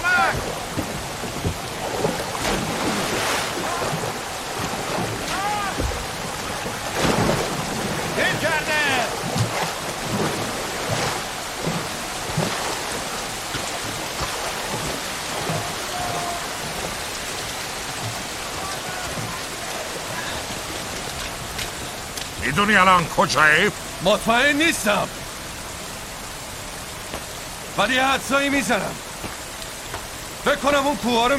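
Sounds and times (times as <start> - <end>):
low rumbles of thunder at sea: 0.0 - 21.6
crashing water around boats taking on water: 0.0 - 25.8, 26.7 - 31.3
steady heavy rain in a storm at sea: 0.0 - 31.3
speech: 22.6 - 25.2, 27.8 - 29.1, 30.4 - 31.3.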